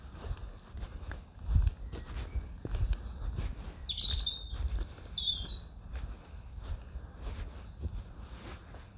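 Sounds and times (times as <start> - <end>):
crunch of footsteps walking on the ground: 0.0 - 8.9
bright bird chirps and short tweets in sunny woodland: 1.5 - 5.8.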